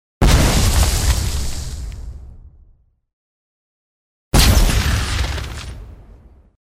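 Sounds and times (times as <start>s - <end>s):
explosions of a bomb or shell: 0.2s - 2.8s, 4.4s - 6.6s.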